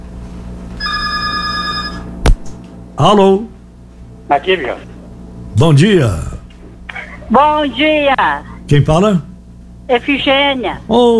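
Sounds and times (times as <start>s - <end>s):
telephone giving a bright electronic ring: 0.8s - 2.1s
speech: 3.0s - 3.6s, 4.3s - 4.9s, 5.6s - 6.3s, 7.3s - 9.3s, 9.9s - 11.1s.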